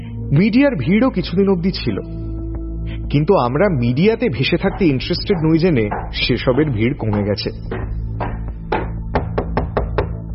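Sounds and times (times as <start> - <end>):
speech: 0.3 - 2.3, 3.1 - 7.9
knocking on a door: 4.7 - 10.2.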